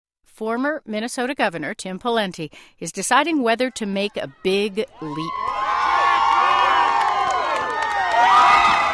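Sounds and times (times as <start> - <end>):
speech: 0.4 - 5.6
large outdoor crowd cheering and shouting at an ice fishing festival: 3.7 - 8.9
people whooping: 4.9 - 8.9
people clapping: 5.2 - 8.9.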